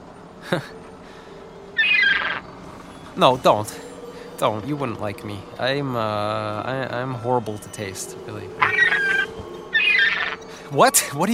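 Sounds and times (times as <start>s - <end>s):
speech: 0.5s - 1.2s, 3.2s - 3.8s, 4.4s - 9.6s, 10.7s - 11.3s
seagull squawking: 1.8s - 2.4s, 8.6s - 10.4s.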